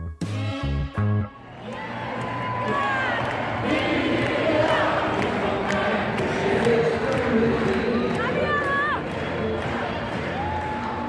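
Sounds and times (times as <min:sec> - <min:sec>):
stadium crowd cheering at a women's football match: 0:01.2 - 0:11.0
higher-pitched shouts and whoops from the stadium crowd: 0:01.4 - 0:03.6, 0:10.3 - 0:11.0.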